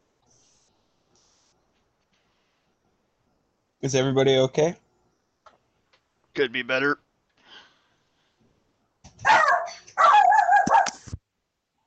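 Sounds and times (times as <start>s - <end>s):
speech: 3.8s - 4.8s, 6.4s - 7.0s
person imitating a dog barking: 9.3s - 11.0s.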